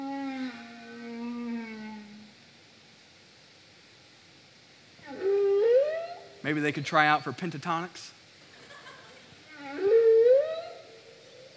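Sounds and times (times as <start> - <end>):
whale song: 0.0 - 2.7, 5.0 - 6.4, 9.5 - 11.5
speech: 6.5 - 8.2.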